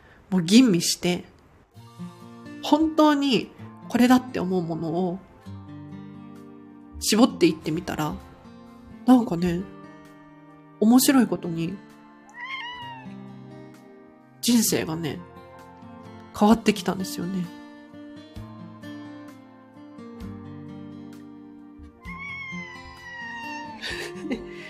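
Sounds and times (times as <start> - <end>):
speech: 0.3 - 1.3, 2.7 - 5.3, 7.0 - 8.3, 9.0 - 9.8, 10.8 - 11.9, 14.4 - 15.3, 16.4 - 17.6
cat meowing: 12.3 - 13.3, 22.0 - 23.8
laughter: 23.8 - 24.6.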